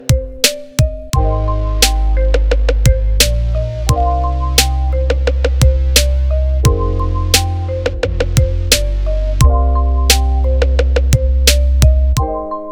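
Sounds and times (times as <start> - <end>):
modern 808 bass drum quakes: 0.1 - 12.5.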